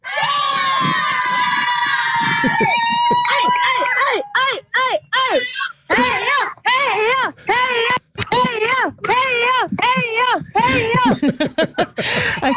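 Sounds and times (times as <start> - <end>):
group of mostly children shouting rhythmic cheers in unison: 0.0 - 4.6
laughter: 0.2 - 12.5.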